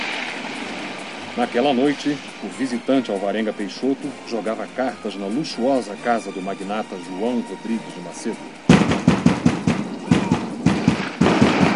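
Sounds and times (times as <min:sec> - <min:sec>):
speech: 0:01.4 - 0:08.7
firm knocking on a door: 0:08.7 - 0:11.7.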